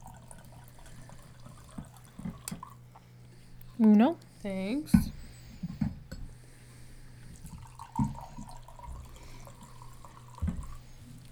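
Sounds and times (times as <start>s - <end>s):
white wine pouring into a glass: 0.0s - 2.8s, 7.3s - 11.3s
speech: 3.8s - 5.2s.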